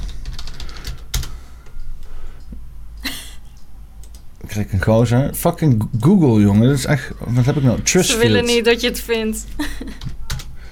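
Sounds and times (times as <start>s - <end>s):
keyboard typing a search: 0.0s - 1.4s, 4.0s - 4.4s, 10.0s - 10.6s
low steady hum: 0.0s - 10.0s
speech: 4.5s - 10.2s.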